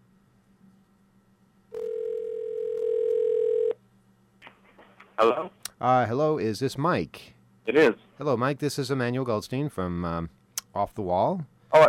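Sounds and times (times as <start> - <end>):
telephone dial tone as a call connects: 1.7 - 3.8
speech: 5.2 - 11.8.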